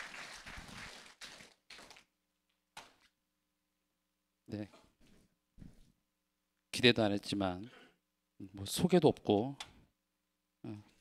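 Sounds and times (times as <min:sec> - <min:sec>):
group clapping after a prayer: 0:00.0 - 0:02.1
speech: 0:04.5 - 0:04.9, 0:06.8 - 0:07.8, 0:08.4 - 0:09.7, 0:10.6 - 0:10.9.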